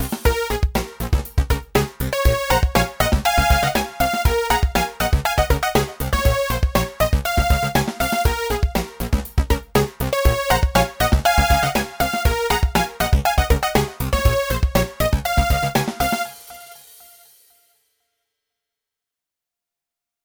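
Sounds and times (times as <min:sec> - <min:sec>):
micro warm-up in B flat: 0:00.3 - 0:17.0.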